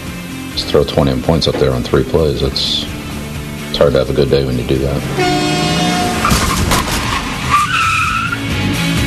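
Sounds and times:
speech: 0:00.6 - 0:03.0, 0:03.7 - 0:05.8
bus tires skidding: 0:02.6 - 0:08.9.

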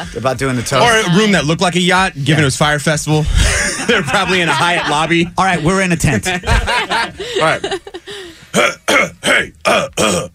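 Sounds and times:
speech: 0:00.0 - 0:07.9, 0:08.5 - 0:10.3
laughter: 0:03.3 - 0:08.3
person clearing throat: 0:08.5 - 0:10.3.

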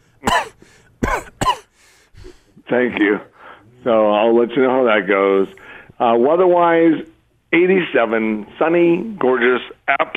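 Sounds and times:
person coughing at a doctor's physical exam: 0:00.2 - 0:02.4
speech: 0:02.7 - 0:10.1.

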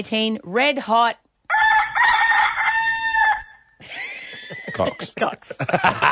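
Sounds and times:
speech: 0:00.0 - 0:01.2, 0:04.8 - 0:06.0
rooster crowing sound effect: 0:01.5 - 0:03.7
laughter: 0:03.8 - 0:06.0.

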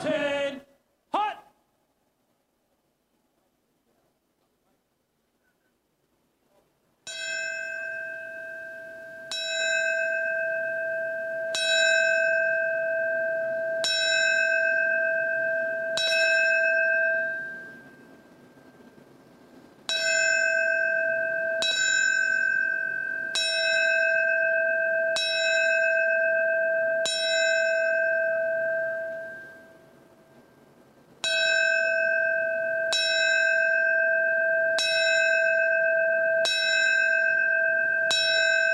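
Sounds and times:
fire department bell ringing: 0:07.1 - 0:19.0, 0:19.8 - 0:30.5, 0:31.2 - 0:38.7.

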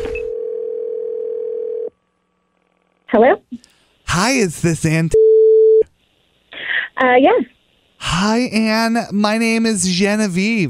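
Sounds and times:
telephone dial tone: 0:00.2 - 0:01.9
speech: 0:03.1 - 0:05.2, 0:07.0 - 0:10.6.

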